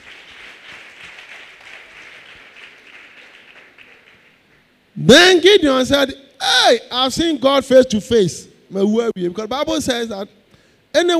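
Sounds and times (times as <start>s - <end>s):
congregation clapping and applauding: 0.0s - 4.7s
speech: 5.0s - 11.1s.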